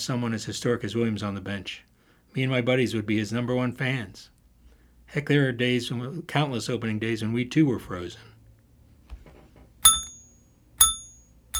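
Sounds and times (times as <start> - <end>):
speech: 0.0 - 4.3, 5.1 - 8.3
bright metallic bell dings: 9.8 - 11.5.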